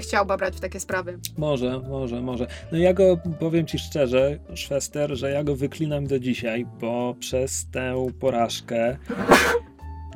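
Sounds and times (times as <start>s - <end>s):
speech: 0.0s - 9.6s
person sneezing into soup: 9.1s - 9.7s.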